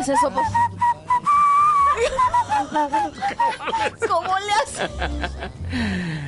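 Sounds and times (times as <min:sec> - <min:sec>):
speech: 0:00.0 - 0:00.8, 0:02.0 - 0:06.2
person whistling a breathy flute-like tune imitating an Andean flute: 0:00.0 - 0:04.0
laughter: 0:01.5 - 0:05.7.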